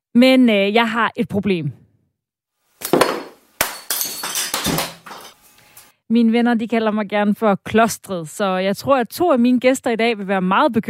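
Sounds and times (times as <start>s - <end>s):
speech: 0.2s - 1.8s, 6.1s - 10.8s
ceramic crockery smashing: 2.8s - 5.4s
ceramic shards clattering and scattering: 2.8s - 5.4s.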